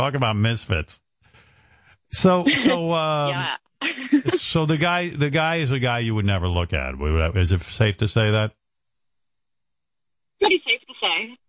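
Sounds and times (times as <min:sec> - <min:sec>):
speech: 0:00.0 - 0:01.0, 0:02.1 - 0:08.6, 0:10.4 - 0:11.4
garbled voice over a phone line: 0:02.2 - 0:03.6, 0:04.2 - 0:07.5, 0:10.4 - 0:11.4
laughter: 0:02.2 - 0:08.3.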